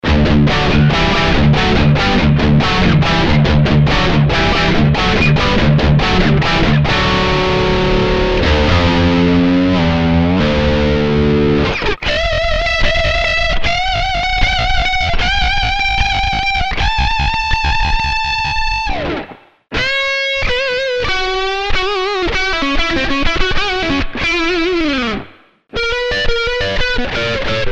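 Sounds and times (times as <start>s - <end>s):
dirty Tesla Shark Neck guitar: 0.0s - 27.7s.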